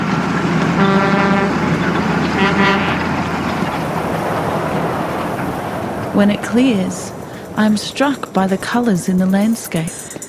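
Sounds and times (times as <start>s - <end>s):
heavy truck passing at high speed: 0.0s - 10.2s
truck horn toots: 0.8s - 3.3s
speech: 6.2s - 10.0s.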